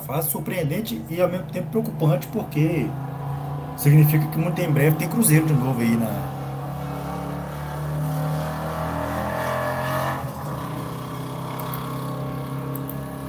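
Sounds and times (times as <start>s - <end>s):
speech: 0.1s - 3.1s, 3.8s - 6.4s
car engine rumbling as the car passes by outside: 1.8s - 13.2s.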